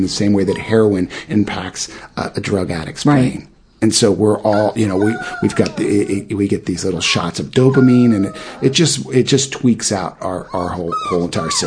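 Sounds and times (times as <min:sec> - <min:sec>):
speech: 0:00.0 - 0:11.6
dog whining in thin high whimpers: 0:04.5 - 0:06.3, 0:07.0 - 0:09.1, 0:10.2 - 0:11.6.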